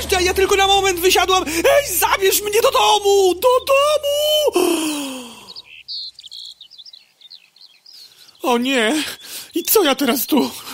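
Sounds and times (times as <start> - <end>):
speech: 0.0 - 5.1, 8.4 - 10.7
birds chirping and trilling in a meadow: 0.0 - 10.7
soft hiss: 4.5 - 10.7.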